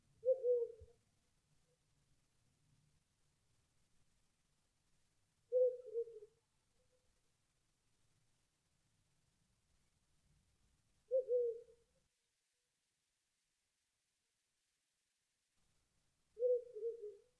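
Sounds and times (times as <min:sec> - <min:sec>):
owl calling: 0:00.2 - 0:00.9, 0:05.5 - 0:06.3, 0:11.1 - 0:11.8, 0:16.4 - 0:17.3.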